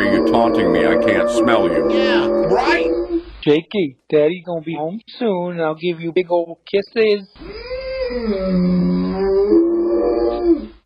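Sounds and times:
dog howling in distress: 0:00.0 - 0:03.1, 0:07.4 - 0:10.8
speech: 0:00.4 - 0:09.6.

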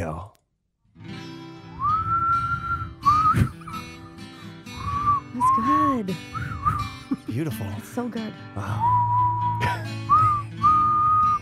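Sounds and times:
person whistling a short tune: 0:01.8 - 0:04.1, 0:04.7 - 0:07.3, 0:08.6 - 0:11.4
speech: 0:06.0 - 0:09.2.

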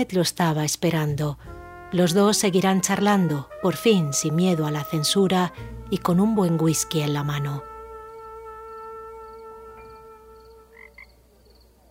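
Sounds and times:
speech: 0:00.0 - 0:07.7
brief higher frog calls: 0:08.2 - 0:11.7
chorus of frogs croaking in a droning trill: 0:08.8 - 0:11.8.

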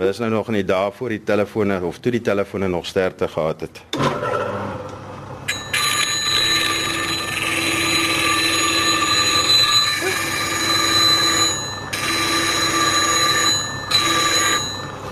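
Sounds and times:
speech: 0:00.0 - 0:04.3
small rasping machine whirring with a high ringing tone: 0:05.5 - 0:15.0.

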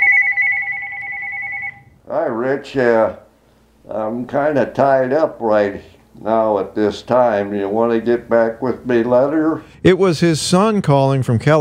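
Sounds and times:
telephone ringing with electronic warble in a living room: 0:00.0 - 0:02.0
speech: 0:02.1 - 0:03.2, 0:03.9 - 0:11.5.

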